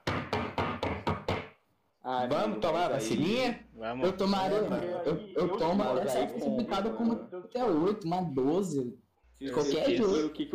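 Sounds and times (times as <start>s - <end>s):
quick knocks on a door: 0.0s - 1.6s
speech: 2.1s - 10.5s.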